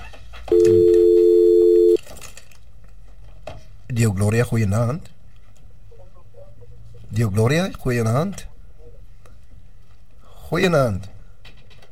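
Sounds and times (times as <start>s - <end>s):
faint noise: 0.0s - 11.8s
loud steady telephone dial tone after a dropped call: 0.5s - 2.0s
speech: 4.1s - 5.2s, 7.1s - 8.5s, 10.5s - 11.1s.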